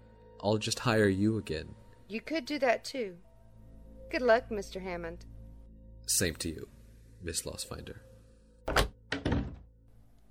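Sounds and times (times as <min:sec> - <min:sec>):
speech: 0:00.4 - 0:03.3, 0:04.1 - 0:05.3, 0:06.1 - 0:08.1
door clicking shut: 0:08.7 - 0:09.7.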